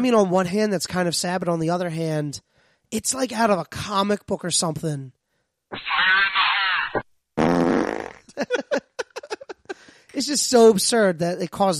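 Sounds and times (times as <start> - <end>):
speech: 0.0 - 6.2, 10.2 - 11.7
loud drawn-out farts and sputtering toots: 5.8 - 8.4
laughter: 5.9 - 7.0, 8.3 - 10.0.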